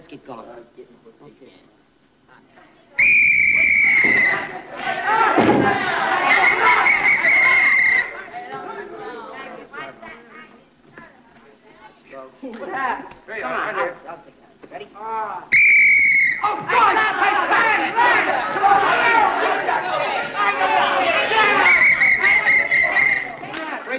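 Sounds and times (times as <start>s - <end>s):
speech: 0.2s - 6.2s
noisy crowd: 2.8s - 14.0s, 15.3s - 23.9s
referee whistle blown to start basketball game: 3.0s - 4.5s, 6.2s - 8.2s, 15.5s - 16.5s, 21.4s - 23.4s
people shouting: 3.0s - 9.3s, 15.5s - 23.9s.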